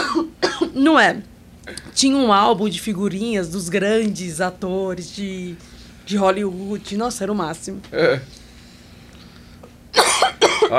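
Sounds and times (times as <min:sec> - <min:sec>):
person coughing harshly: 0:00.0 - 0:00.8, 0:10.0 - 0:10.7
speech: 0:00.8 - 0:08.4.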